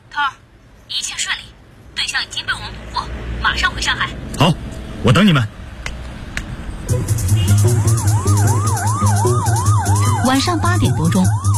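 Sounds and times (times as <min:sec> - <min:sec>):
speech: 0:00.2 - 0:01.5, 0:02.1 - 0:05.6, 0:07.0 - 0:07.5, 0:10.3 - 0:11.5
police car siren: 0:06.9 - 0:11.5.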